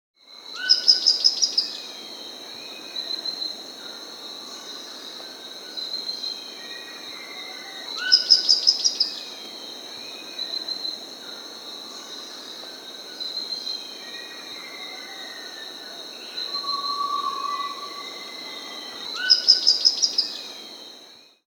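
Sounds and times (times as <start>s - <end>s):
Rufous-rumped foliage-gleaner Philydor erythrocercus achrogaster in the Andes: 0.3s - 21.4s.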